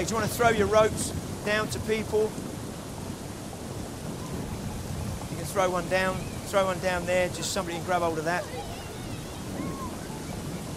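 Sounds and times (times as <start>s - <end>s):
speech: 0.0s - 2.5s, 5.5s - 8.8s
hissing rain in a storm: 0.0s - 10.7s
low rumbling thunder in a storm: 0.0s - 10.7s.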